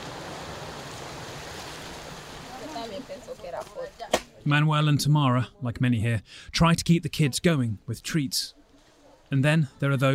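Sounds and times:
river water rushing during a river crossing on foot through the jungle: 0:00.0 - 0:03.5
splashes during a river crossing on foot: 0:00.0 - 0:04.4
speech: 0:03.0 - 0:08.6, 0:09.3 - 0:10.1.

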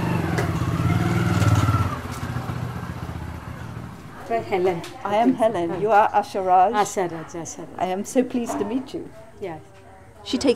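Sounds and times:
motorbike engine rumbling as it rolls up and idles: 0:00.0 - 0:07.6
speech: 0:04.3 - 0:10.5.

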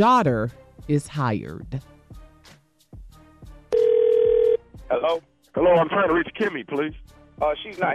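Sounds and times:
speech: 0:00.0 - 0:02.0, 0:04.9 - 0:07.9
loud steady telephone ringing tone: 0:03.7 - 0:04.6.

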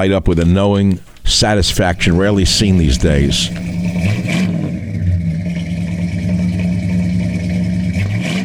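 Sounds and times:
speech: 0:00.0 - 0:04.4
1950s Cadillac V8 car engine revving: 0:02.8 - 0:08.4.

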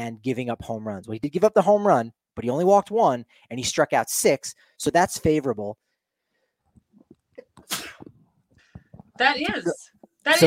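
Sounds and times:
speech: 0:00.0 - 0:05.8, 0:09.2 - 0:10.4
person sneezing: 0:07.4 - 0:08.2.

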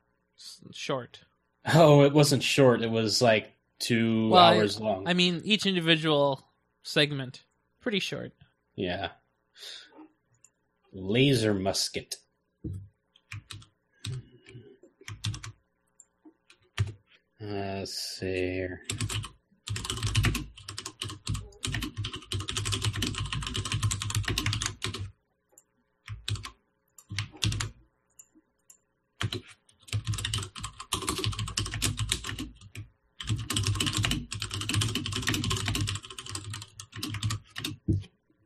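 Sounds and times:
speech: 0:00.6 - 0:09.9, 0:10.9 - 0:14.2, 0:17.4 - 0:19.8
rapid typing on a blank keyboard with mechanical switches: 0:13.2 - 0:14.2, 0:15.0 - 0:15.6, 0:18.8 - 0:25.1, 0:26.1 - 0:28.3, 0:29.2 - 0:37.8.

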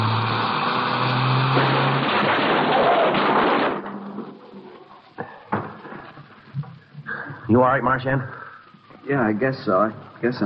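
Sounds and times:
car engine roaring: 0:00.0 - 0:02.5
car crash grinding and crunching as a car is driven into another: 0:00.0 - 0:04.6
settling debris: 0:01.5 - 0:04.8
speech: 0:07.5 - 0:08.4, 0:09.1 - 0:10.4.

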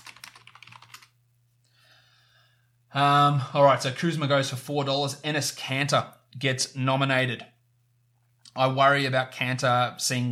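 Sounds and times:
typing a message on a computer keyboard: 0:00.0 - 0:01.1
speech: 0:02.9 - 0:07.5, 0:08.5 - 0:10.2.

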